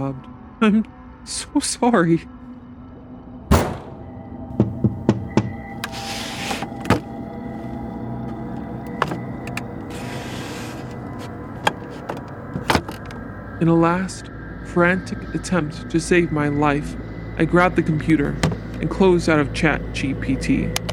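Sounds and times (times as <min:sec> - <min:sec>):
speech: 0:00.0 - 0:02.4, 0:13.6 - 0:20.8
low rumbling background: 0:00.0 - 0:20.9
door banging and rattling: 0:03.5 - 0:06.0, 0:11.7 - 0:13.1.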